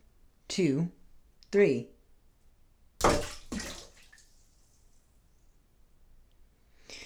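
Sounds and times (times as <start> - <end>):
speech: 0.6 - 1.9
water sloshing in bathtub: 3.0 - 4.2
fizzing bath item dropped into bathtub water splashing: 3.0 - 4.4.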